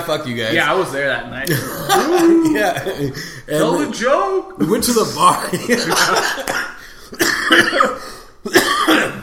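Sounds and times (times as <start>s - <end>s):
speech: 0.0s - 9.1s
laughter: 1.5s - 3.5s, 5.2s - 6.9s
harsh chesty coughs: 6.1s - 9.2s.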